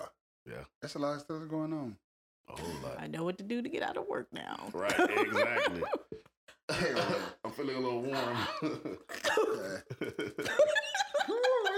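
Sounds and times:
speech: 0:00.6 - 0:10.8
laughter: 0:04.7 - 0:11.7
person faking exaggerated voiced coughs: 0:09.1 - 0:09.8.

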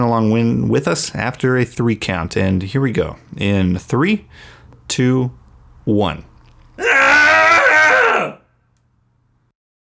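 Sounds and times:
speech: 0:00.0 - 0:07.0
loud sustained cathartic human scream: 0:06.8 - 0:08.4.

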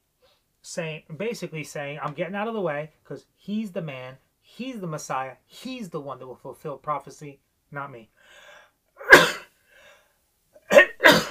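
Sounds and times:
speech: 0:00.6 - 0:08.4
loud abrupt human sneezes: 0:09.0 - 0:09.5, 0:10.6 - 0:11.3.

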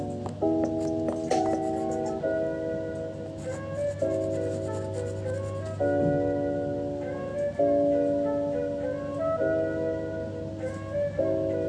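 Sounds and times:
music: 0:00.0 - 0:11.6
scribbling: 0:00.4 - 0:02.2, 0:03.4 - 0:05.8.

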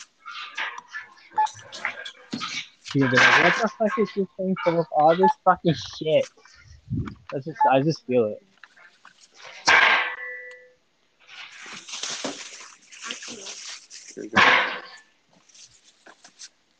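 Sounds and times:
noise: 0:00.0 - 0:16.7
voices: 0:02.9 - 0:08.4, 0:13.1 - 0:14.9
speech: 0:02.9 - 0:08.5
dog barking: 0:03.0 - 0:05.3.

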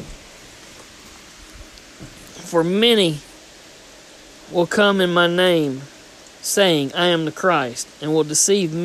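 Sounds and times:
steady rain pattering on a surface: 0:00.0 - 0:08.8
speech: 0:02.0 - 0:03.3, 0:04.5 - 0:08.8.

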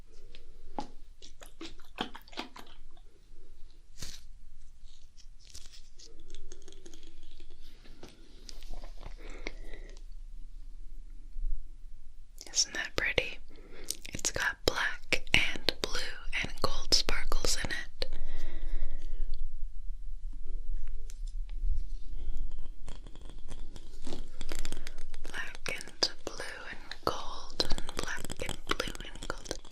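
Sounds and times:
faint low hum: 0:00.0 - 0:29.7
crackly brushing and rubbing over the ear: 0:03.9 - 0:06.1.

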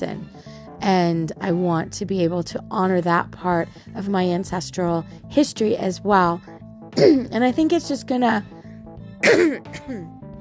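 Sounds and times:
speech: 0:00.0 - 0:08.6, 0:09.2 - 0:10.2
harsh throat clearing: 0:07.0 - 0:07.3, 0:09.2 - 0:10.2.

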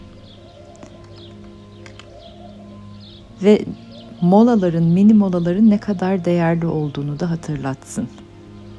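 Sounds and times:
birds chirping: 0:00.0 - 0:08.7
steady low hum: 0:00.0 - 0:08.7
speech: 0:03.4 - 0:08.2.

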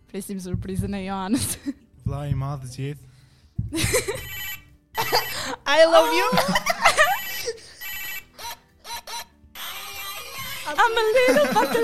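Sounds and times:
speech: 0:00.1 - 0:03.1, 0:03.7 - 0:04.3, 0:05.7 - 0:07.1, 0:10.7 - 0:11.8
mobile phone ringtone: 0:04.0 - 0:05.6, 0:06.3 - 0:11.7
laughter: 0:06.0 - 0:07.8, 0:10.2 - 0:11.8.

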